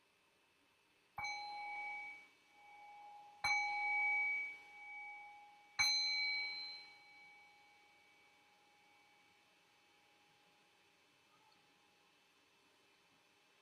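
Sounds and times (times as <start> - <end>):
meditation bell ringing: 1.2 - 9.4.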